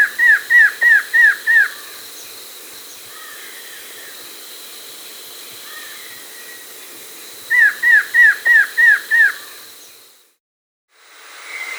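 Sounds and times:
variable antshrike calling harshly: 0.0 - 10.2
steady background hiss: 0.0 - 10.3.

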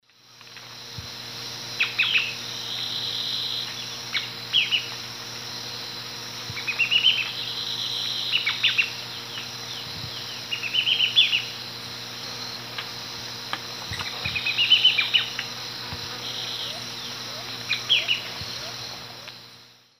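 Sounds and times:
Phaeomyias murina song and calls: 1.8 - 4.9, 6.5 - 11.5, 13.9 - 15.5, 16.1 - 19.3.

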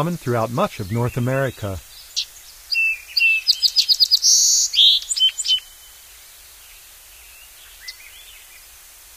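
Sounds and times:
speech: 0.0 - 1.9
song sparrow song: 0.0 - 8.8.

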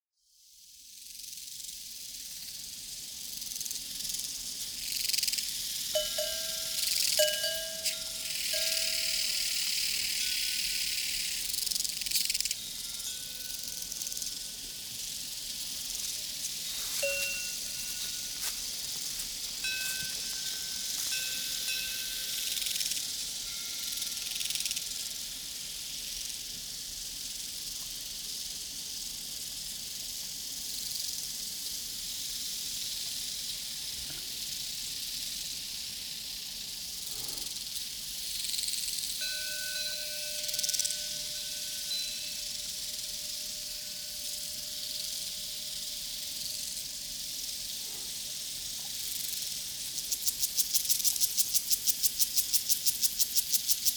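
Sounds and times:
crickets chirping on a prairie: 1.1 - 53.9
cowbells on a prairie: 5.9 - 25.4, 38.8 - 53.2.

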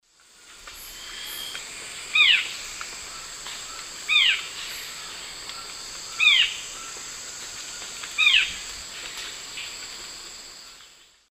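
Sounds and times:
Cercomacra cinerascens calling in the Eastern Lowlands of South America: 0.7 - 7.0.

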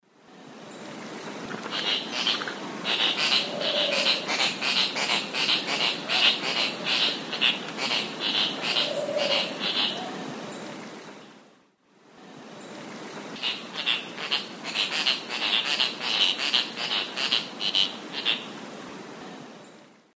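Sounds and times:
Tityra semifasciata calls in the Eastern Lowlands of South America: 0.8 - 11.4, 13.4 - 18.6.

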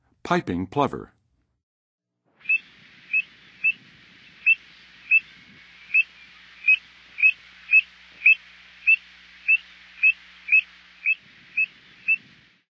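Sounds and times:
Piping Plover calling in the Western USA: 2.4 - 12.5.

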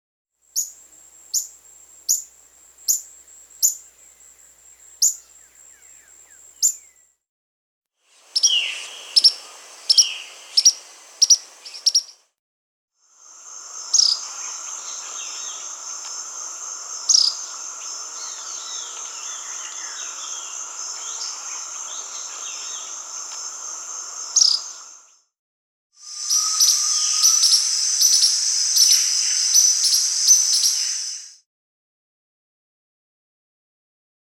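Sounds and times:
Spotted Tody-Flycatcher Todirostrum maculatum calling in Peru: 0.5 - 7.0, 8.2 - 12.2, 13.5 - 25.0, 26.0 - 31.4.

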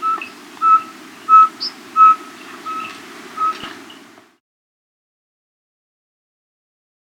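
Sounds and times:
Yungas pygmy owl giving clear whistled toots: 0.0 - 3.7
low background hiss: 0.0 - 4.4.

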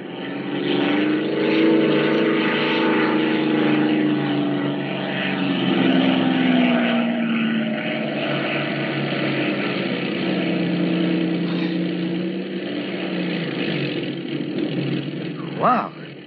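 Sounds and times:
light propeller airplane engine droning while landing in open country: 0.0 - 16.2.

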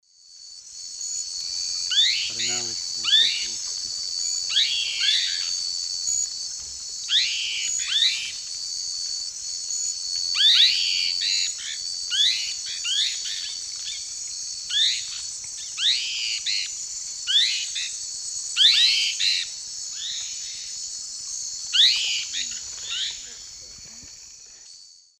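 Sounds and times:
Philohydor lictor group calls: 1.7 - 6.3, 7.0 - 8.4, 10.4 - 18.0, 18.6 - 20.8, 21.7 - 24.1.

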